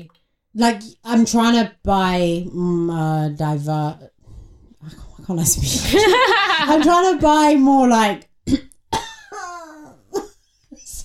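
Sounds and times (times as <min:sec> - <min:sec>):
speech: 0:00.0 - 0:04.1, 0:04.8 - 0:08.7
person coughing from a dry throat: 0:08.5 - 0:09.9.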